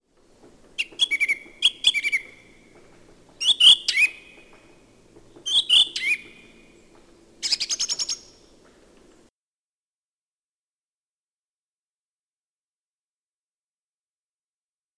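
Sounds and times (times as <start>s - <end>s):
song thrush Turdus philomelos singing: 0.2s - 9.3s.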